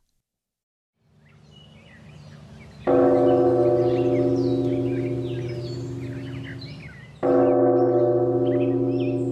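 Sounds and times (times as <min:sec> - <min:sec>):
birds chirping faintly: 0:01.0 - 0:09.2
large temple bell struck: 0:02.9 - 0:09.2.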